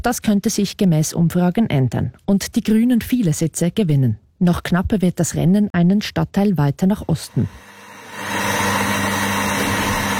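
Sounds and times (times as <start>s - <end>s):
speech: 0.0s - 7.7s
coffee machine making a cappuccino in Hackney London: 7.3s - 10.1s.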